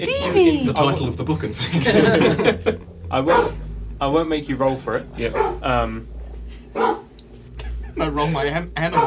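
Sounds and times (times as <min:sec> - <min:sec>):
speech: 0:00.0 - 0:06.1, 0:06.8 - 0:07.0, 0:08.0 - 0:09.0
laughter: 0:01.6 - 0:02.9, 0:07.6 - 0:08.5
dog barking playfully: 0:03.3 - 0:03.6, 0:05.3 - 0:05.6, 0:06.8 - 0:07.1.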